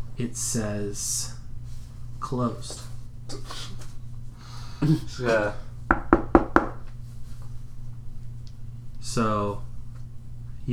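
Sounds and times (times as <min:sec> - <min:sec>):
steady low hum: 0:00.0 - 0:10.7
speech: 0:00.2 - 0:01.4, 0:02.2 - 0:03.8, 0:04.8 - 0:05.7, 0:09.2 - 0:09.7
knocking on a door: 0:05.9 - 0:06.9.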